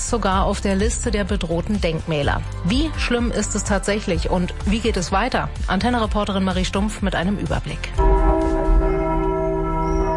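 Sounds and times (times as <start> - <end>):
speech: 0.1 - 8.1
recast church bells ringing at a church in Frankfurt (Oder): 8.0 - 10.1.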